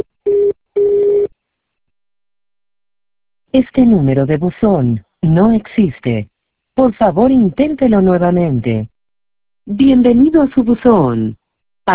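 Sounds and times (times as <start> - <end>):
steady electronic telephone tones from a voicemail line: 0.0 - 1.3
speech: 3.8 - 8.9, 9.6 - 11.9.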